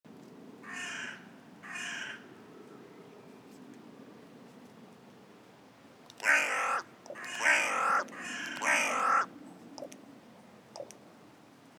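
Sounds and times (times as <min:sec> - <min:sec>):
faint background noise: 0:00.1 - 0:11.7
carrion crow cawing: 0:00.6 - 0:02.2, 0:06.2 - 0:09.3.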